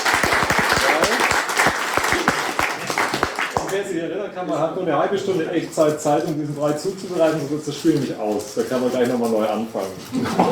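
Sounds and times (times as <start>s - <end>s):
audience applause for a contestant: 0.0s - 3.8s
speech: 3.8s - 10.5s.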